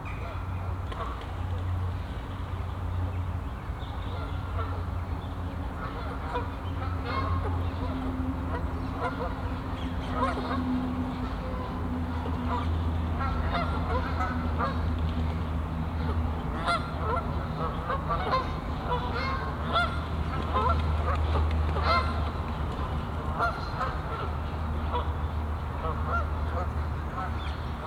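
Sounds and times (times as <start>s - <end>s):
strong steady low hum: 0.0s - 27.8s
geese honking on a castle pond in a botanical garden: 5.8s - 14.8s, 16.0s - 20.8s.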